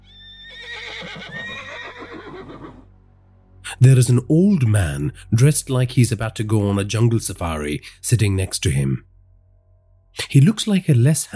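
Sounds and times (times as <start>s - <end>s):
horse whinnying: 0.0s - 2.9s
low steady hum: 2.9s - 11.3s
speech: 3.8s - 9.1s, 10.2s - 11.3s.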